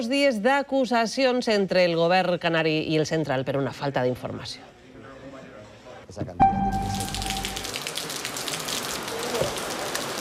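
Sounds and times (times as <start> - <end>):
speech: 0.0 - 4.7, 6.1 - 7.2
brief ringing tone: 6.4 - 7.7
heavy rain falling: 6.7 - 10.1.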